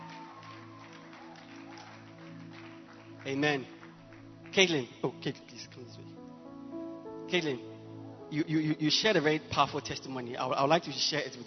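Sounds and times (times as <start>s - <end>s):
audience clapping hands in welcome: 0.0s - 5.5s
low sustained musical drone: 0.0s - 11.3s
speech: 3.2s - 3.8s, 4.5s - 6.3s, 7.3s - 7.7s, 8.3s - 11.4s.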